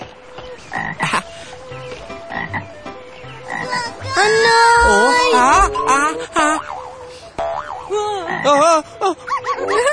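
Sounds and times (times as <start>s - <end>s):
speech: 0.7s - 1.2s, 8.4s - 9.9s
cartoon-style frog croaking: 3.5s - 8.6s.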